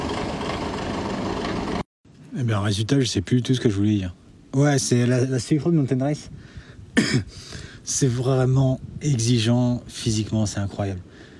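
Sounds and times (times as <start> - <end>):
tractor diesel engine idling: 0.0 - 1.8
speech: 2.3 - 11.1.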